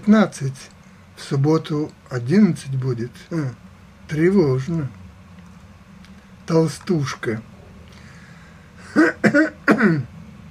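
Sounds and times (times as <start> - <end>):
speech: 0.0 - 5.0, 6.5 - 7.5, 9.0 - 10.1
young man coughing: 8.8 - 10.1.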